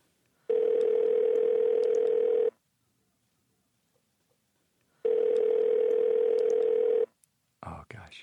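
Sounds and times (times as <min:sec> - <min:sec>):
droning telephone ringback tone on a call: 0:00.5 - 0:02.6, 0:05.0 - 0:07.1.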